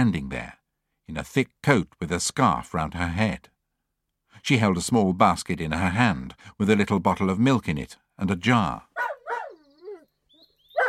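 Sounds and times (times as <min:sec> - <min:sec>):
speech: 0:00.0 - 0:03.5, 0:04.4 - 0:09.1
dog barking at a cat: 0:09.0 - 0:10.0
dog drawn-out whining yelp: 0:09.0 - 0:10.8.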